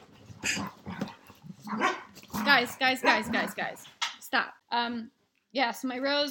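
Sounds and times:
dogs barking: 0:00.4 - 0:03.8
speech: 0:02.6 - 0:06.2.

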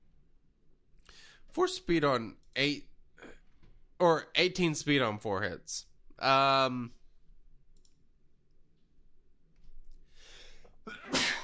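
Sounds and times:
speech: 0:01.6 - 0:02.9, 0:04.0 - 0:07.0
loud sneeze: 0:10.9 - 0:11.4.

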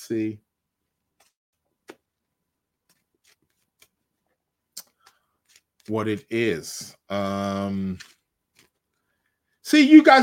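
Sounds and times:
speech: 0:00.1 - 0:00.5, 0:05.9 - 0:08.1, 0:09.7 - 0:10.2
deck of cards shuffling: 0:01.2 - 0:02.1, 0:02.8 - 0:04.2, 0:04.8 - 0:06.2, 0:07.7 - 0:09.0.

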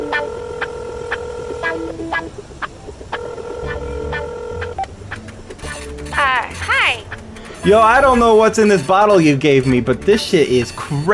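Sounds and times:
telephone dialing tones: 0:00.0 - 0:02.3, 0:03.1 - 0:05.0
low hum: 0:00.0 - 0:08.6
speech: 0:01.8 - 0:02.7, 0:07.6 - 0:11.1.

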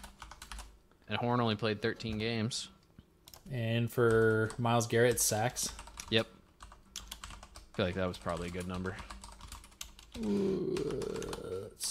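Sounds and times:
typing on a computer keyboard: 0:00.0 - 0:00.7, 0:03.2 - 0:11.5
speech: 0:01.1 - 0:02.8, 0:03.4 - 0:06.3, 0:07.8 - 0:09.1, 0:10.2 - 0:11.8.

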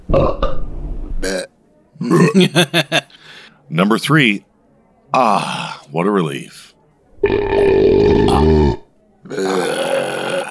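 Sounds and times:
loud guttural belch: 0:00.1 - 0:00.6, 0:01.2 - 0:02.6, 0:07.2 - 0:10.4
speech: 0:02.0 - 0:03.0, 0:03.7 - 0:04.5, 0:05.1 - 0:06.7
laughter: 0:02.0 - 0:03.5.

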